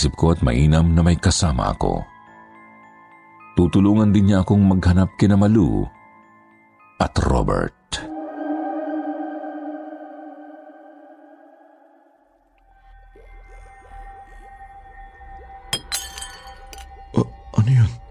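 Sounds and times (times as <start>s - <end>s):
speech: 0.0s - 2.1s, 3.6s - 6.0s, 7.0s - 8.1s
eerie droning tone: 8.0s - 15.7s
glass shattering: 15.8s - 16.9s.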